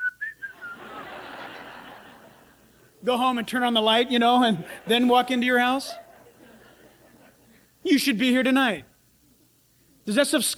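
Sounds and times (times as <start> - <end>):
person whistling: 0.0 - 1.0
steady breathy hiss: 0.0 - 10.5
laughter: 0.5 - 7.8
speech: 3.0 - 6.0, 7.8 - 8.9, 10.1 - 10.5.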